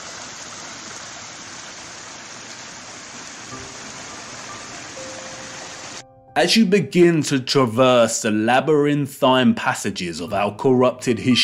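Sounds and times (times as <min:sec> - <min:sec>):
flowing stream water rushing on an estate: 0:00.0 - 0:06.0
speech: 0:06.4 - 0:11.4.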